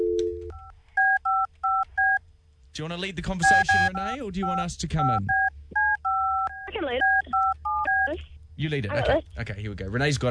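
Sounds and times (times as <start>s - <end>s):
low hum: 0.0s - 10.2s
speech: 2.8s - 5.4s, 6.8s - 7.2s, 8.1s - 10.2s
touch-tone DTMF beeps of a phone number being dialed: 3.4s - 8.2s.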